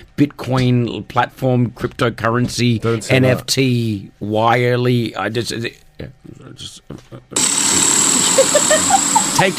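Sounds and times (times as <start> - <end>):
speech: 0.2 - 7.8, 9.4 - 9.5
laughter: 6.6 - 9.5
loud harsh continuous rattling snore: 7.4 - 9.2.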